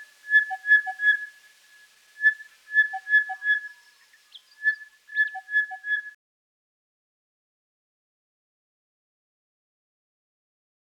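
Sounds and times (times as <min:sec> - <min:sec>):
crested bellbird singing: 0:00.0 - 0:06.2.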